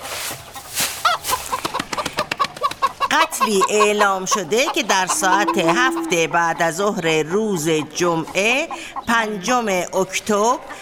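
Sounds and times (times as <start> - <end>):
rustling background in a chicken coop: 0.0 - 2.2
chickens clucking in a chicken coop: 0.0 - 10.7
speech: 3.1 - 10.7.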